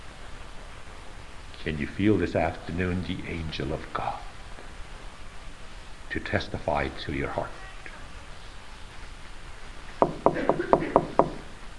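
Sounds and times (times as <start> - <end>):
faint low hum: 0.0 - 11.7
speech: 1.6 - 4.3, 6.1 - 7.6
knocking on a door: 10.0 - 11.5.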